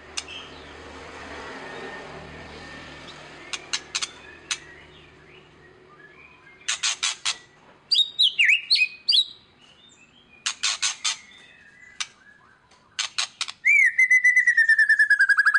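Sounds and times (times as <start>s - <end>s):
white-rumped shama song with looping whistles and buzzy clicks: 0.2s - 0.6s, 3.4s - 15.5s.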